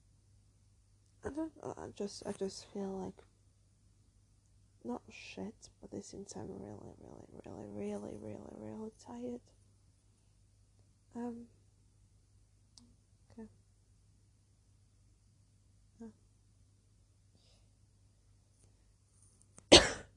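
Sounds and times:
quiet hum: 0:00.0 - 0:20.1
speech: 0:01.2 - 0:03.3, 0:04.8 - 0:09.6, 0:11.2 - 0:11.6, 0:13.4 - 0:13.6
dry coughs: 0:19.7 - 0:20.1.

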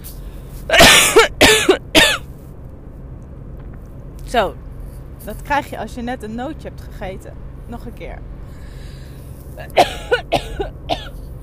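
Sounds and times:
low hum: 0:00.0 - 0:11.4
person coughing: 0:00.7 - 0:02.2, 0:09.6 - 0:11.2
speech: 0:04.3 - 0:08.3, 0:09.6 - 0:10.9.

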